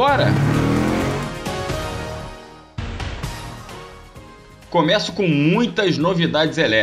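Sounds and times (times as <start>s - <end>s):
speech: 0.0s - 0.5s, 4.7s - 6.8s
car engine revving hard: 0.0s - 1.9s.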